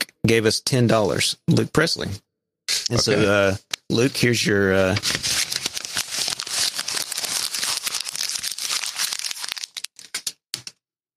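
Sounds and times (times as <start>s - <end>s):
speech: 0.3s - 2.2s, 2.9s - 5.4s
paper crinkling: 4.9s - 10.4s.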